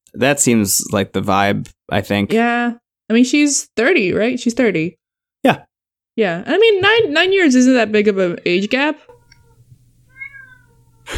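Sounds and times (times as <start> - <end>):
speech: 0.1 - 9.1
cat meowing: 9.1 - 11.1.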